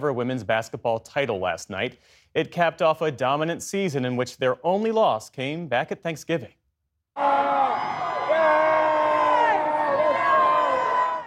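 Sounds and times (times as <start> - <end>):
speech: 0.0 - 6.6, 7.2 - 7.4
dense crowd of basketball fans screaming and cheering: 7.2 - 11.2.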